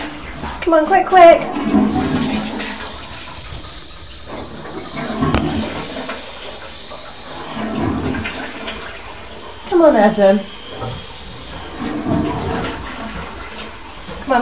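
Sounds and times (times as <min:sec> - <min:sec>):
toilet flushing: 0:00.0 - 0:14.4
speech: 0:00.7 - 0:01.8, 0:09.8 - 0:11.0.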